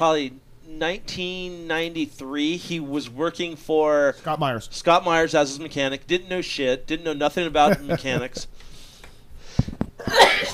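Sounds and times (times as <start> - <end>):
speech: 0.0 - 8.7
laughter: 7.6 - 8.5
loud sneeze: 10.0 - 10.5.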